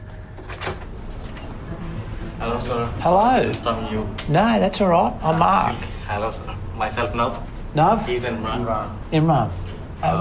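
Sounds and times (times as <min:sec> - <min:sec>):
steady low hum: 0:00.0 - 0:10.2
hotel room door opening: 0:00.3 - 0:01.7
speech: 0:02.4 - 0:10.2.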